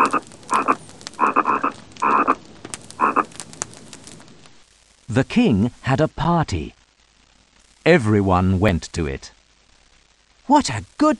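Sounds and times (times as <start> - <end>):
frogs croaking: 0.0 - 3.4
speech: 5.2 - 6.8, 7.9 - 9.4, 10.5 - 11.1.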